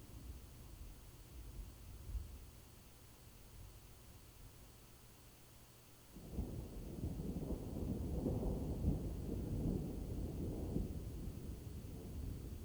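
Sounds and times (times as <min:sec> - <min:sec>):
faint wash of rain or wind: 0:00.0 - 0:12.6
thunder rumbling from an approaching storm over dark plains: 0:06.3 - 0:12.6.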